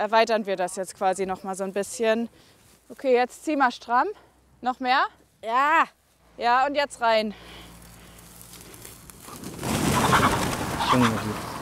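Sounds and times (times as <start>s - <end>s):
speech: 0.0s - 7.6s, 10.9s - 11.5s
rustling commotion of startled chickens scattering: 7.4s - 11.6s
startled chickens clucking: 9.2s - 11.6s.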